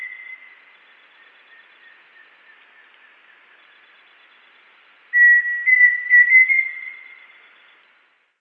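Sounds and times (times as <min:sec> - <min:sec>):
pheasant cuckoo Dromococcyx phasianellus whistling: 0:05.1 - 0:07.6.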